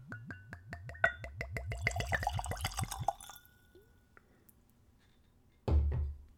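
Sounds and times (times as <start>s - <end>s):
apple brandy glugging from a bottle into a Glencairn whiskey glass: 1.6s - 3.4s.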